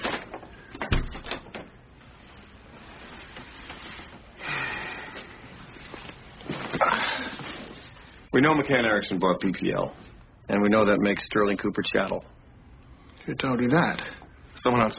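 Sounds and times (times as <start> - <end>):
door pushed closed with a soft thud: 0.8 - 1.7
shuffling movements: 1.8 - 8.3
speech: 8.4 - 12.3, 13.3 - 14.9.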